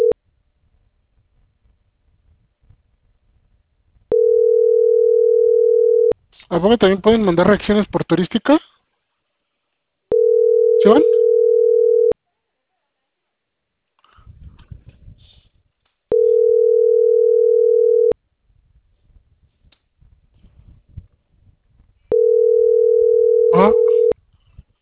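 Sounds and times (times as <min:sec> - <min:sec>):
ringback tone of an unanswered telephone call: 0:04.1 - 0:06.2, 0:10.1 - 0:12.2, 0:16.1 - 0:18.2, 0:22.1 - 0:24.2
speech: 0:06.5 - 0:08.8, 0:10.8 - 0:11.2.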